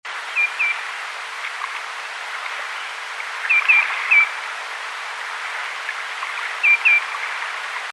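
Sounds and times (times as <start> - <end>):
Tringa nebularia: 0.3 - 0.8, 3.4 - 4.3, 6.6 - 7.2.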